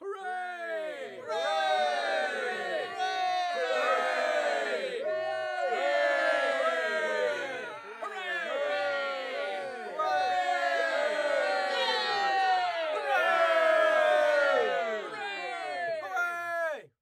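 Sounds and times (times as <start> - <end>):
human crowd cheering hooray: 0.7 - 16.9.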